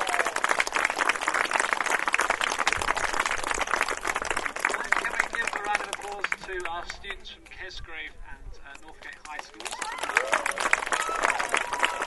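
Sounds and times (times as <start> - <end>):
indistinct voices and cheers: 0.0 - 0.4, 9.6 - 12.0
crowd clapping at a school sports day: 0.0 - 7.0, 9.0 - 12.0
speech: 6.8 - 11.8.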